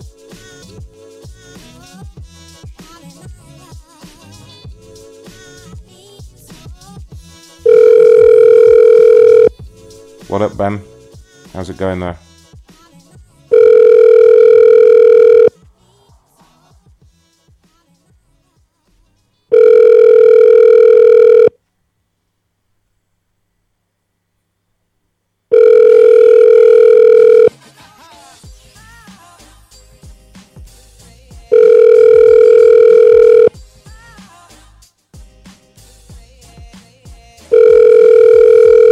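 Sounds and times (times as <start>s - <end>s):
telephone ringing unanswered on a call: 7.7s - 9.5s, 13.5s - 15.5s, 19.5s - 21.6s, 25.5s - 27.5s, 31.5s - 33.5s, 37.5s - 38.9s
speech: 10.3s - 10.9s, 11.6s - 12.2s.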